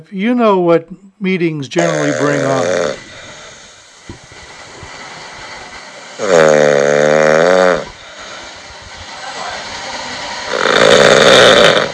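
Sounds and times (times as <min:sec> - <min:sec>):
speech: 0:00.0 - 0:03.0, 0:06.2 - 0:06.6
snoring: 0:01.8 - 0:03.7, 0:06.2 - 0:08.0, 0:10.5 - 0:11.9.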